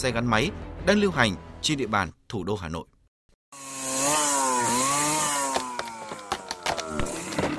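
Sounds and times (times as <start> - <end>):
speech: 0.0 - 2.9
chainsaw felling trees in a forest: 3.5 - 7.5
wood cracking and crunching as the cut goes through: 4.9 - 7.5.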